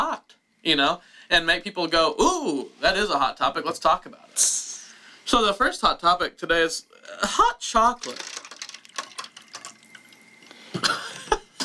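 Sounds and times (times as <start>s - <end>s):
speech: 0.6s - 4.7s, 5.3s - 8.3s
liquid poured over ice: 8.0s - 10.7s.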